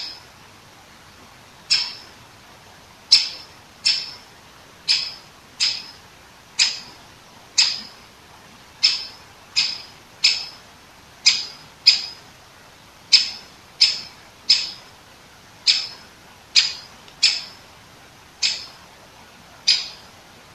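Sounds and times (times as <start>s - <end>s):
great spotted woodpecker Dendrocopos major kick calls: 0.0s - 0.2s, 1.7s - 2.2s, 3.1s - 4.2s, 4.8s - 6.0s, 6.6s - 7.0s, 7.6s - 8.0s, 8.8s - 10.6s, 11.2s - 12.2s, 13.1s - 14.9s, 15.6s - 17.6s, 18.4s - 18.8s, 19.6s - 20.2s.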